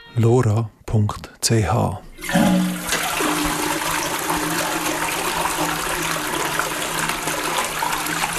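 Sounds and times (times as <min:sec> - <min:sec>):
speech: 0:00.2 - 0:02.6
toilet flushing: 0:02.1 - 0:08.3.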